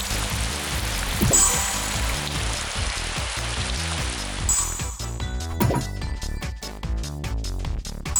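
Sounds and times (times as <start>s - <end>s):
video game downpour with lightning in a weather game: 0.0s - 4.5s
thumping rhythmic game soundtrack: 0.5s - 8.1s.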